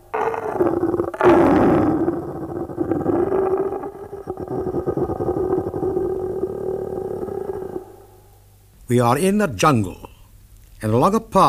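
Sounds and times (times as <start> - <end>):
limping lion grunting and roaring along a jungle path: 0.0 - 8.1
speech: 8.9 - 10.0, 10.8 - 11.4.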